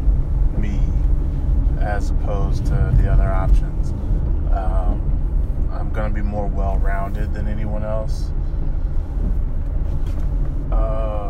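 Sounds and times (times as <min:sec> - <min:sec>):
cars passing by outside: 0:00.0 - 0:11.2
speech: 0:01.9 - 0:05.2, 0:05.8 - 0:08.4, 0:10.0 - 0:11.2.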